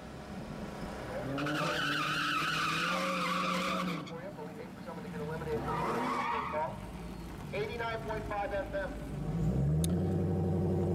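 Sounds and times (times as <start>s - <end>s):
Dodge Hellcat engine roaring and revving during a burnout: 0.0s - 10.9s
Dodge Hellcat tire squeal during a burnout: 0.6s - 4.4s, 5.4s - 7.4s.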